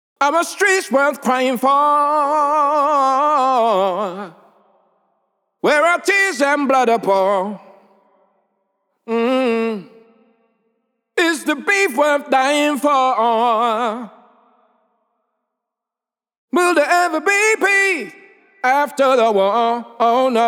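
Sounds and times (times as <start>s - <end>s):
male vocal hook with reverb in G minor: 0.2s - 4.8s, 5.6s - 8.2s, 9.0s - 10.4s, 11.2s - 14.4s, 16.5s - 20.4s.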